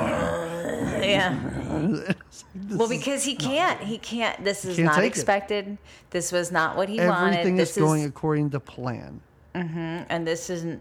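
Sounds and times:
voice imitating a man growling: 0.0s - 2.2s
speech: 1.1s - 10.7s.

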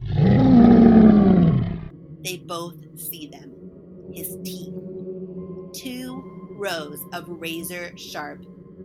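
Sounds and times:
deafening monster roar with a deep rumbling tone: 0.0s - 2.0s
speech: 2.2s - 4.9s, 5.7s - 8.8s.

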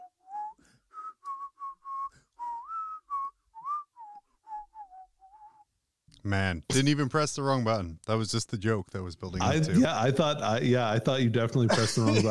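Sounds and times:
person whistling a lively tune: 0.0s - 5.7s
speech: 6.2s - 12.2s
laughter: 9.4s - 12.2s.

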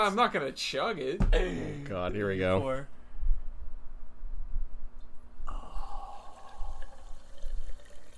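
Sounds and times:
speech: 0.0s - 3.0s
liquid pouring into a glass: 5.5s - 8.1s.

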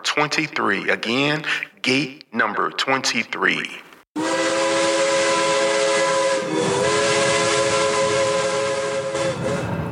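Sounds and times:
speech: 0.2s - 3.9s
steam locomotive whistle blowing a multi-tone chord: 4.2s - 9.8s.

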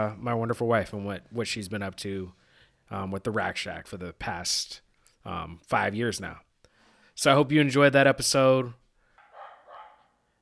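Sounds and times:
speech: 0.0s - 6.5s, 7.2s - 8.8s
dogs barking at a possum: 9.2s - 10.2s.

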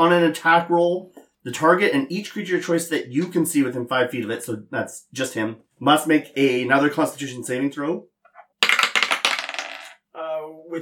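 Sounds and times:
speech: 0.0s - 8.1s
four-sided die clattering across a hard tabletop: 8.6s - 10.0s.

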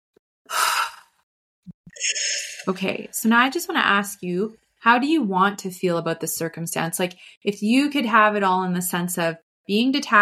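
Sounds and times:
person taking a huge deep breath: 0.5s - 1.2s
speech: 2.0s - 10.2s.

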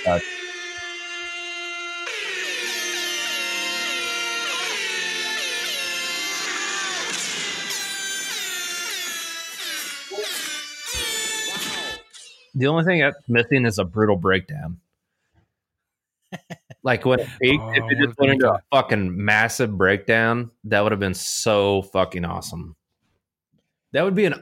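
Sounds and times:
speech: 0.0s - 0.5s, 12.6s - 14.8s, 16.8s - 22.8s, 23.9s - 24.4s
loud brassy air horn blaring: 0.0s - 1.0s, 2.0s - 7.0s
laughter: 16.3s - 18.9s.

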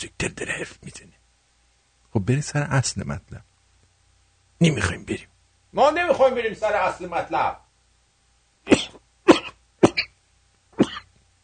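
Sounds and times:
speech: 2.2s - 3.5s, 4.6s - 7.6s
person coughing: 8.7s - 10.2s, 10.8s - 11.1s.

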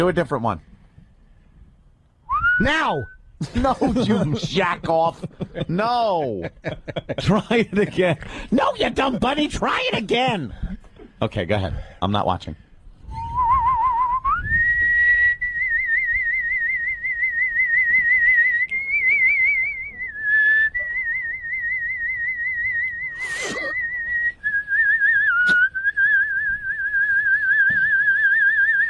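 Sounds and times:
speech: 0.0s - 0.7s, 2.6s - 12.6s
man whistling a wavering tune with vibrato: 2.2s - 3.3s, 13.1s - 28.8s
laughter: 3.4s - 8.3s.

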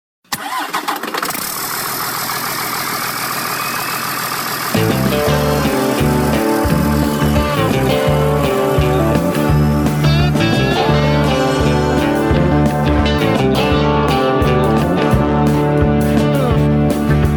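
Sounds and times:
big old truck engine cranking and running: 0.3s - 17.3s
deep rhythmic throb: 4.8s - 17.3s.

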